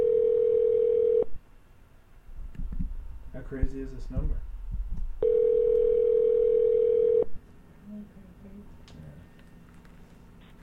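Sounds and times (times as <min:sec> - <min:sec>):
telephone dial tone: 0:00.0 - 0:01.3, 0:05.2 - 0:07.3
speech: 0:03.5 - 0:04.5.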